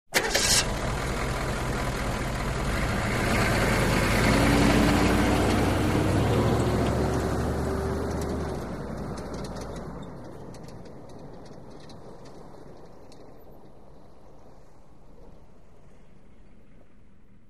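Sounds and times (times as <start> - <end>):
Humvee engine starting: 0.1 - 13.0.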